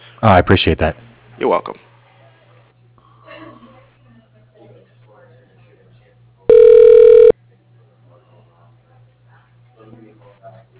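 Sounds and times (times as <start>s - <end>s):
speech: 0.2s - 1.8s
electronic telephone tone as a call is transferred to voicemail: 6.5s - 7.3s.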